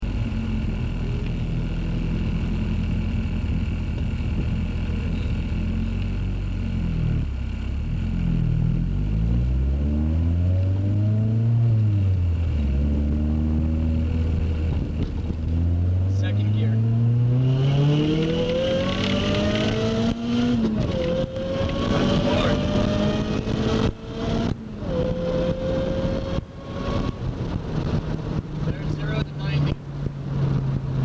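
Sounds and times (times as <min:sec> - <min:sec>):
car engine accelerating at wide open throttle in second gear to 90mph: 0:00.0 - 0:31.0.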